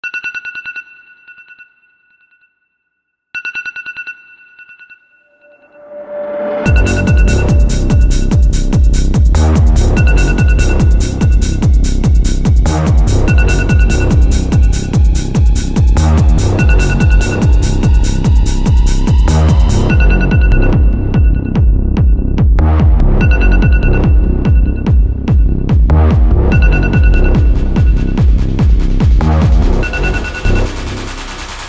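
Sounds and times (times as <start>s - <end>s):
phone alarm clock techno remix: 6.6s - 31.6s.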